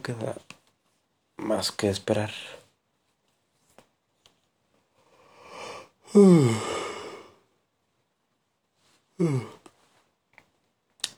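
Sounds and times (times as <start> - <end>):
speech: 0.0 - 0.5, 1.4 - 2.6, 6.1 - 6.8, 9.2 - 9.6
drawn-out breathy yawn with a voiced groan: 6.1 - 7.3, 9.2 - 9.6.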